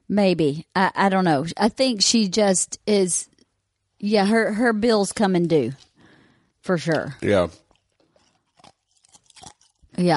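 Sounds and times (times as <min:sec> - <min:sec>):
speech: 0:00.1 - 0:03.3, 0:04.0 - 0:05.9, 0:06.6 - 0:07.6, 0:10.0 - 0:10.1
person chewing ice cubes: 0:07.2 - 0:10.0.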